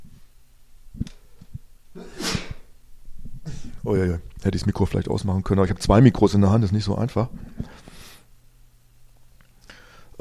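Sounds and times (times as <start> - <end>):
person sneezing: 2.0 - 2.7, 3.4 - 3.8
speech: 3.8 - 7.7.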